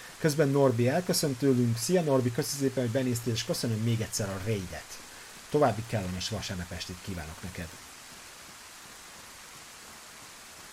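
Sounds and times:
rain falling in a video game: 0.0 - 10.7
speech: 0.2 - 7.9.

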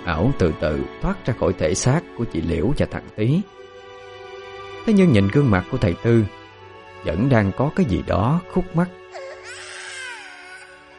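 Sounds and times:
speech: 0.1 - 3.6, 4.8 - 6.4, 7.0 - 9.3
mournful crying: 9.0 - 10.9.

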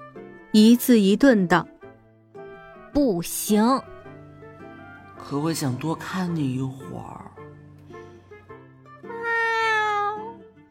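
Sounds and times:
speech: 0.5 - 1.7, 2.9 - 3.9, 5.2 - 7.3
cat meowing softly: 9.0 - 10.5.

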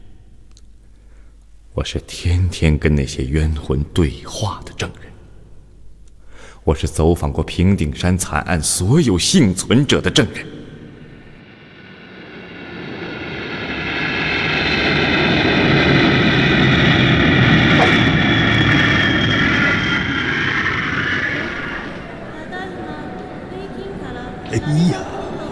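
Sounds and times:
speech: 1.8 - 5.1, 6.6 - 10.6
airplane engine roar at a large airport: 10.5 - 25.5.

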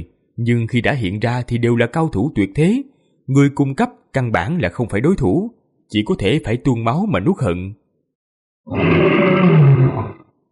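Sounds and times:
speech: 0.0 - 7.8, 8.6 - 10.2
old lion roaring: 8.7 - 10.3.

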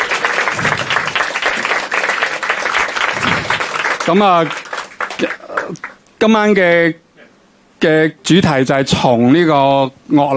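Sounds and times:
audience applause welcoming a speaker at a lecture: 0.0 - 6.0
speech: 4.1 - 4.6, 5.2 - 7.0, 7.8 - 10.3.

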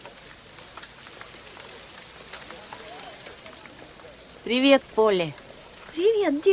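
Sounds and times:
light drizzling rain: 0.0 - 6.5
speech: 4.5 - 5.4, 6.0 - 6.5.

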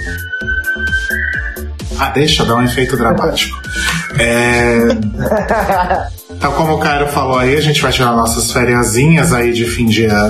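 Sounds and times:
night watchman blowing a shrill whistle: 0.0 - 4.9
speech: 2.0 - 10.2
laughter: 2.2 - 6.8.

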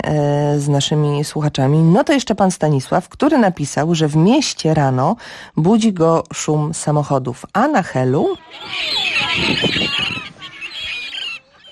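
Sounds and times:
speech: 0.1 - 10.3
seagulls calling at a seaside beach: 7.9 - 11.7.

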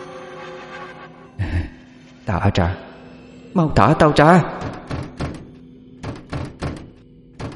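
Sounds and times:
speech: 2.3 - 2.9, 3.6 - 4.8
door being rammed and kicked: 4.6 - 7.5.

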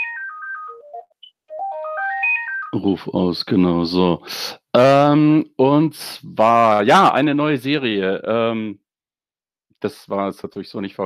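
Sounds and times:
electronic telephone ringtone melody: 0.0 - 3.0
speech: 2.7 - 8.8, 9.8 - 11.0.

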